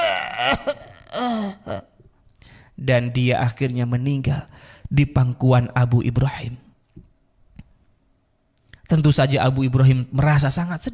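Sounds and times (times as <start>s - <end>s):
voice imitating an old man's harsh coughing and choking: 0.0s - 2.1s
speech: 0.4s - 1.9s, 2.8s - 6.6s, 8.9s - 10.9s.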